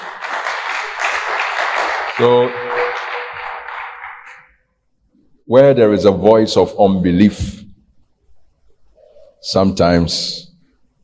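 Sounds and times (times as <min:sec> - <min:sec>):
audience clapping: 0:00.0 - 0:04.6
speech: 0:02.2 - 0:02.7, 0:05.5 - 0:07.6, 0:09.4 - 0:10.5.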